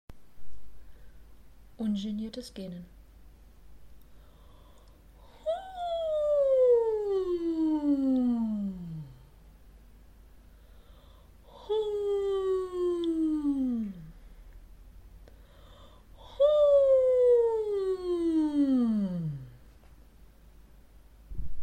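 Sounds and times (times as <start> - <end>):
person yawning uninhibitedly in head voice: 4.4 - 9.4, 10.8 - 14.2, 15.4 - 19.6.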